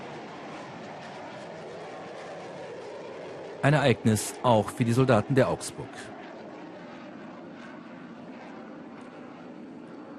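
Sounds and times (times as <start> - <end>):
fighter jets taking off from an aircraft carrier: 0.0 - 10.1
speech: 3.6 - 6.2.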